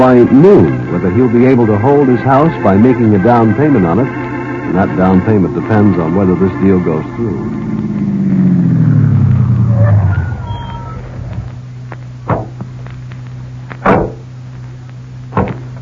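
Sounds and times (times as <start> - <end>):
speech: 0.1 - 8.5
car engine rumbling and idling: 3.8 - 15.7.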